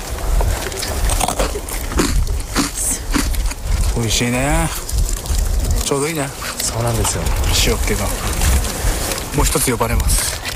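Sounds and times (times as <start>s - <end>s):
chewing a shiruko sand biscuit: 0.0s - 10.5s
biting into a crunchy individually wrapped shiruko sand biscuit: 0.4s - 5.9s
speech: 4.0s - 4.8s, 5.9s - 8.5s, 9.4s - 10.4s.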